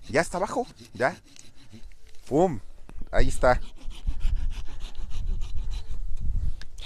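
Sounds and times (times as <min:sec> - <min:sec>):
hand saw cutting through a pine tree trunk: 0:00.0 - 0:02.0, 0:03.3 - 0:06.0
speech: 0:00.1 - 0:03.8.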